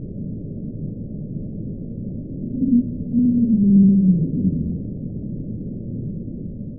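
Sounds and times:
underwater rumble of iceberg running aground: 2.4 - 5.1
iceberg running aground, sped-up underwater recording: 2.5 - 5.0.

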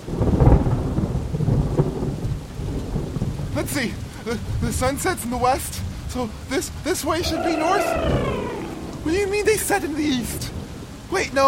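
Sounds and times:
pouring rain: 0.0 - 11.4
deep rolling thunder: 0.2 - 3.6, 7.1 - 11.4
speech: 3.6 - 11.4.

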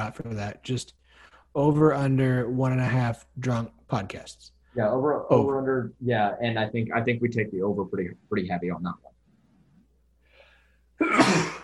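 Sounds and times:
speech: 0.0 - 9.1
person sneezing: 11.0 - 11.6.

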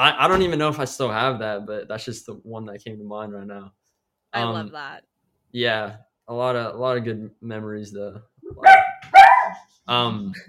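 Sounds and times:
speech: 0.0 - 8.8, 9.9 - 10.4
dog whine-like yelp: 8.4 - 9.7
dogs barking: 8.6 - 9.7.

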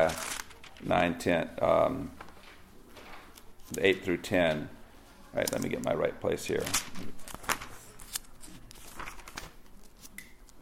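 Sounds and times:
thin Bible pages being turned and flipped: 0.0 - 1.1, 2.1 - 4.0, 6.5 - 10.5
speech: 0.0 - 2.2, 3.7 - 7.2.

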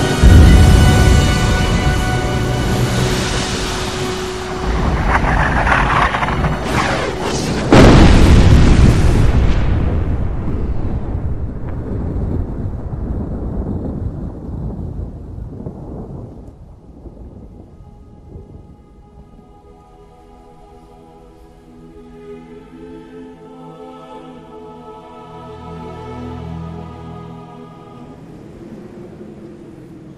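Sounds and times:
massive catastrophic explosion with deep booming rumble: 0.2 - 2.0, 2.6 - 18.6
second heavy blast rolling into a low rumble: 0.2 - 10.6.

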